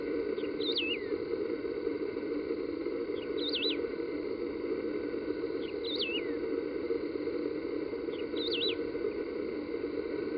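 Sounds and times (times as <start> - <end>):
steady background drone: 0.0 - 10.3
wedge-tailed grass finch warbling call in a nature reserve in Brazil: 0.6 - 1.1, 3.4 - 3.8, 5.8 - 6.3, 8.4 - 8.8.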